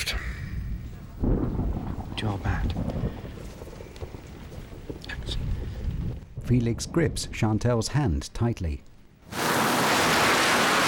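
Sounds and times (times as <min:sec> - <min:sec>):
heavy rain while driving: 0:00.0 - 0:06.4, 0:09.2 - 0:10.8
speech: 0:02.2 - 0:03.1, 0:06.5 - 0:08.9.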